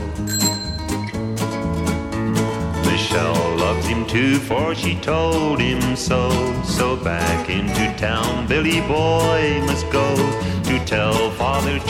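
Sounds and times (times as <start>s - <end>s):
musical backing: 0.0s - 11.8s
bicycle bell ringing: 0.2s - 1.4s
speech: 3.2s - 11.8s.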